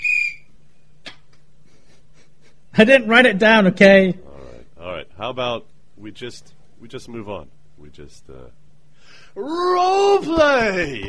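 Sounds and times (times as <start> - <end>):
single short shrill whistle blast: 0.0 - 0.5
quiet low hum: 0.0 - 11.0
speech: 2.8 - 4.2, 5.2 - 8.6, 9.4 - 11.0.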